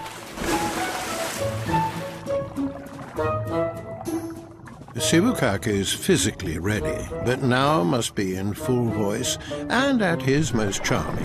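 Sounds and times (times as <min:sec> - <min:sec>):
large animal rolling and splashing into its water tank at a theme park: 0:00.0 - 0:03.4
churning sloshing water in a tank: 0:00.0 - 0:05.9
speech: 0:05.0 - 0:11.2.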